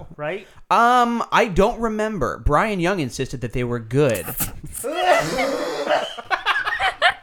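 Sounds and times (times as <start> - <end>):
speech: 0.2 - 6.2
harsh painful coughs: 4.4 - 6.3
strained laughing voice: 4.7 - 7.2.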